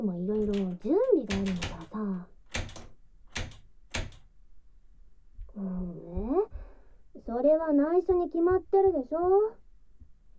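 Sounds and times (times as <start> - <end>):
speech: 0.0 - 1.8, 7.4 - 9.6
knocking on a door: 0.4 - 1.9, 2.5 - 4.2.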